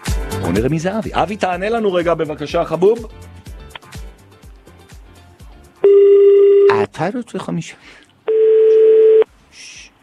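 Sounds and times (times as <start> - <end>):
speech: 0.5 - 3.3, 7.0 - 8.0
loud steady telephone tone: 5.8 - 6.7, 8.3 - 9.3.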